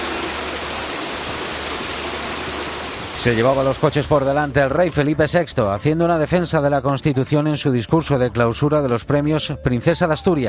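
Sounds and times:
torrential rain from a cold-drop storm in Vinaròs, Castellón: 0.0s - 4.9s
speech: 3.2s - 10.4s.

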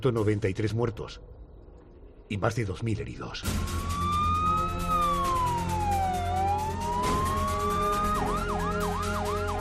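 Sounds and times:
speech: 0.0s - 1.4s, 2.3s - 3.9s
ambulance sirens wailing after a terrorist attack near Atocha station in Spain: 3.5s - 9.5s.

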